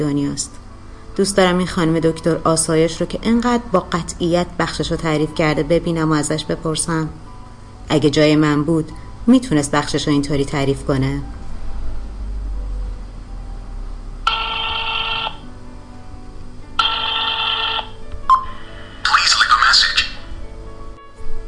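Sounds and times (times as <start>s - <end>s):
speech: 0.0s - 0.6s, 1.2s - 7.3s, 7.9s - 11.4s
low hum: 0.0s - 21.4s
telephone ringing with electronic buzzing bursts: 14.2s - 15.4s, 16.8s - 18.0s.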